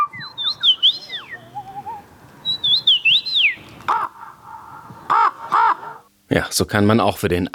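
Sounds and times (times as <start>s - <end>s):
person imitating birdsong at a birdsong competition in Poland: 0.2s - 6.0s
speech: 6.3s - 7.5s.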